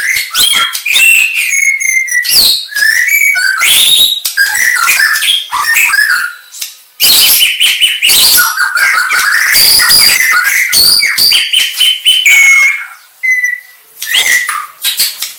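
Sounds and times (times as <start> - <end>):
Aceh variety white-rumped shama singing: 0.0 - 15.3.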